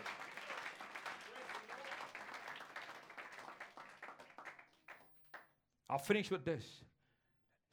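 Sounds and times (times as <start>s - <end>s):
crowd applauding: 0.0s - 5.1s
speech: 5.9s - 6.9s.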